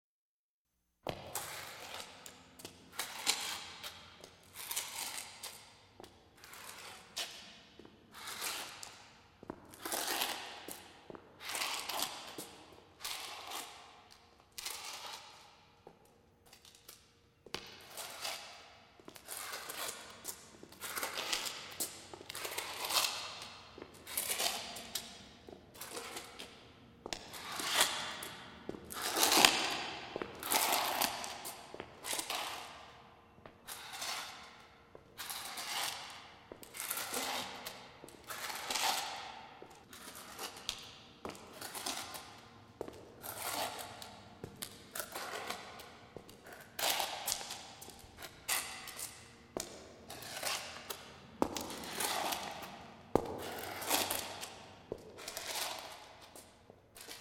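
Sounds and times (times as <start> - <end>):
slow limping footsteps with echo: 1.1 - 57.1.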